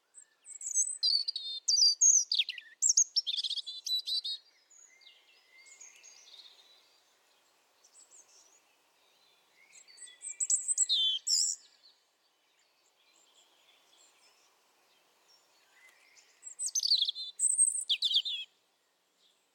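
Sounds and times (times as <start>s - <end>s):
European robin: 0.2s - 18.6s.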